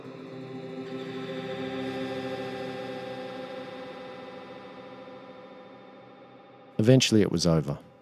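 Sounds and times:
song drowned in heavy reverb: 0:00.0 - 0:06.8
speech: 0:06.8 - 0:07.9.

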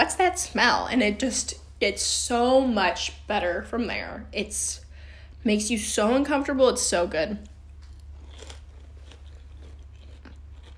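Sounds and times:
speech: 0:00.0 - 0:04.8, 0:05.4 - 0:07.5
steady low hum: 0:00.0 - 0:10.7
chewing and crunching food during a meal: 0:07.4 - 0:10.7.

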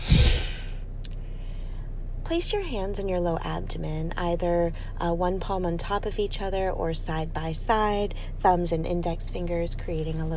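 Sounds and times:
forceful breath in and out through nose during a breathing exercise: 0:00.0 - 0:00.8
speech: 0:02.3 - 0:10.3.

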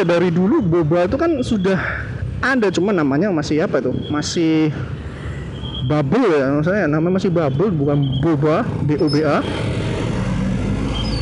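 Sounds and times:
speech: 0:00.0 - 0:05.0, 0:05.8 - 0:09.8
car engine and road noise passing by: 0:09.1 - 0:11.2.

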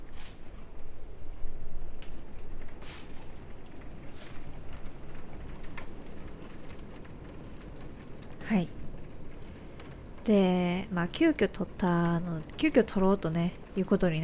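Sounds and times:
steady rain pouring: 0:00.0 - 0:14.2
speech: 0:08.5 - 0:08.8, 0:10.3 - 0:14.2.

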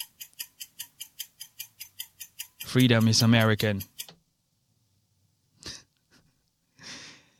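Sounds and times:
timer clock ticking: 0:00.0 - 0:04.2
speech: 0:02.7 - 0:03.9.

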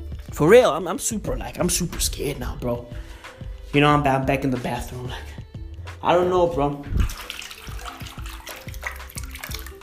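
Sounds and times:
speech: 0:00.4 - 0:03.1, 0:03.7 - 0:05.3, 0:06.0 - 0:07.2
gurgling plops and bubbles in bathtub water: 0:06.9 - 0:09.8
water running into a bathtub with a fizzing hiss: 0:06.9 - 0:09.8.

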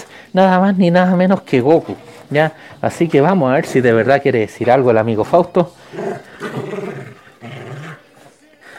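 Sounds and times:
speech: 0:00.3 - 0:06.7
dog growling: 0:05.8 - 0:08.3.

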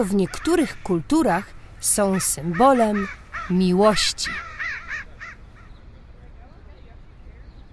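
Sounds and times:
speech: 0:00.0 - 0:04.5
crow cawing in harsh bursts: 0:00.0 - 0:05.7.

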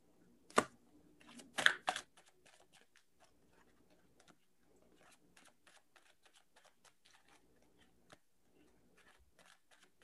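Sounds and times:
tarot cards being shuffled during a reading: 0:00.5 - 0:03.3, 0:05.0 - 0:08.2, 0:09.0 - 0:10.0.

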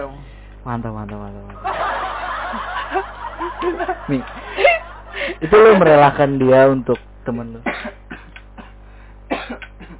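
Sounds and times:
speech: 0:00.0 - 0:01.9, 0:02.5 - 0:04.7, 0:05.4 - 0:07.7
laughter: 0:01.6 - 0:06.8
person coughing: 0:07.6 - 0:09.9.

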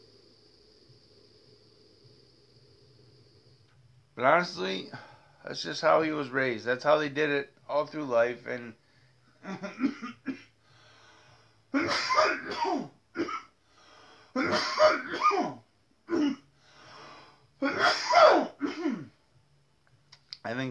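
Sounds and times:
speech: 0:04.2 - 0:08.8, 0:09.4 - 0:10.4, 0:20.4 - 0:20.6
man coughing: 0:09.4 - 0:10.5, 0:11.8 - 0:13.5, 0:14.4 - 0:16.4, 0:17.6 - 0:19.1.

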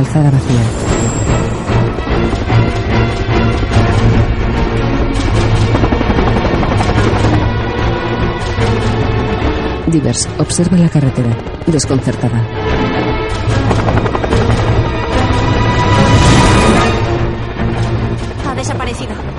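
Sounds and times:
helicopter flying overhead: 0:00.0 - 0:19.3
speech: 0:00.1 - 0:01.8, 0:09.9 - 0:13.0.

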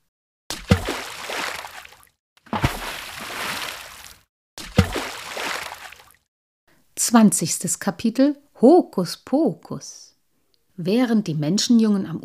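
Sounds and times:
water splashing and sloshing as someone jumps headfirst into a pond: 0:00.5 - 0:06.3
speech: 0:07.1 - 0:10.1, 0:10.8 - 0:12.2.

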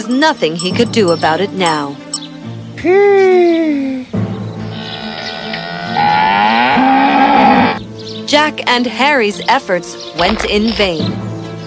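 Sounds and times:
speech: 0:00.0 - 0:02.0, 0:02.8 - 0:04.1, 0:08.3 - 0:11.2
cow mooing: 0:04.7 - 0:07.8.

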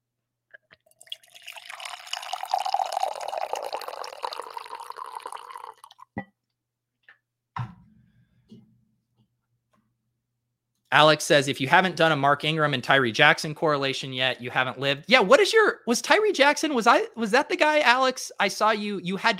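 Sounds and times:
drink being poured into a glass: 0:00.8 - 0:06.3
speech: 0:10.9 - 0:19.3.

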